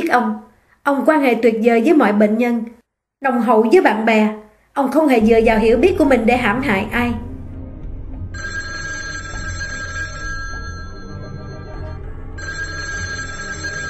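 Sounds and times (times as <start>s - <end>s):
speech: 0.1s - 7.3s
telephone ringing with a bright electronic tone: 8.4s - 13.8s.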